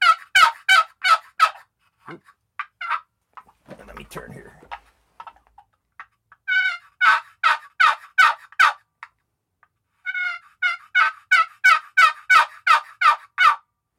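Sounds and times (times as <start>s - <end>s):
turkey yelps from a game call: 0.0s - 3.1s, 6.4s - 8.8s, 10.0s - 13.7s
turkey clucks on a game call: 0.0s - 9.2s, 10.0s - 13.6s
speech: 2.1s - 2.4s, 4.0s - 4.6s.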